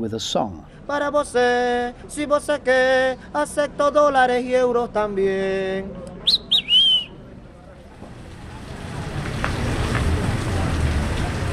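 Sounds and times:
speech: 0.0 - 6.1
short bright whistle tones: 6.2 - 7.2
rain falling: 7.8 - 11.5.

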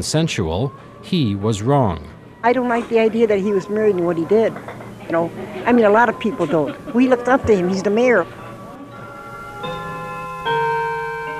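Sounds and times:
speech: 0.0 - 8.4
resonant chimes of a 65-year-old clock in a modest home in Milwaukee: 8.9 - 11.3.

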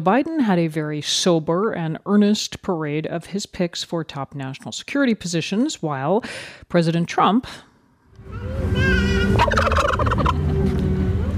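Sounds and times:
speech: 0.0 - 10.3
turkeys gobbling at a White House turkey pardon ceremony: 9.0 - 10.4.

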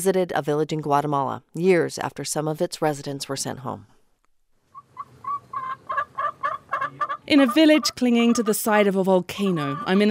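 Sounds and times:
speech: 0.0 - 4.0, 7.3 - 10.0
chicken clucking in a coop: 4.8 - 8.6, 9.4 - 10.0.

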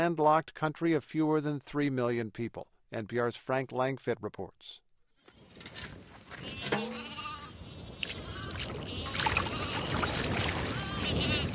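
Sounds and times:
speech: 0.0 - 4.8
strong wind roaring in the Gobi: 5.5 - 11.5
cashmere goats bleating while drinking from an aluminum basin: 6.4 - 11.5.

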